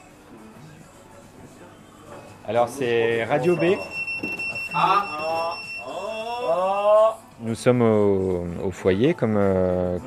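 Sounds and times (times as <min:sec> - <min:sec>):
speech: 0:02.4 - 0:04.0, 0:04.8 - 0:05.1, 0:07.4 - 0:10.0
high electronic alert tones from several pagers signalling a callout: 0:03.4 - 0:06.4.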